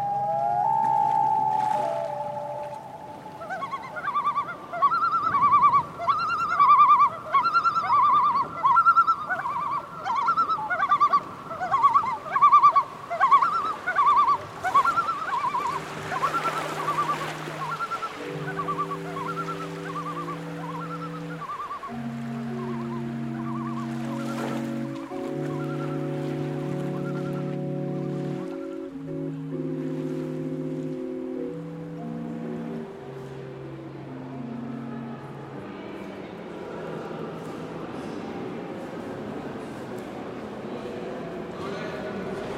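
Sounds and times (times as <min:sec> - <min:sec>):
sustained organ tones from a suspended organ: 0:00.0 - 0:36.0
birds on perches above a suspended organ chirping and calling: 0:01.6 - 0:28.7.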